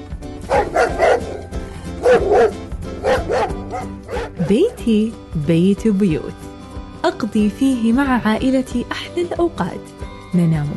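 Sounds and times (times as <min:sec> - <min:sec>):
dog barking with a whiny yipping edge: 0:00.4 - 0:04.5
speech: 0:04.5 - 0:06.4, 0:07.0 - 0:10.7.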